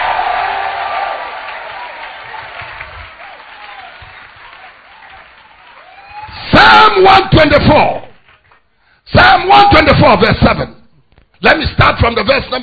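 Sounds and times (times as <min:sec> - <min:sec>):
crowd clapping: 0:00.0 - 0:06.3, 0:08.1 - 0:08.7
crowd shouting and cheering: 0:00.0 - 0:07.7
speech: 0:06.9 - 0:08.0, 0:09.1 - 0:10.7, 0:11.4 - 0:12.6.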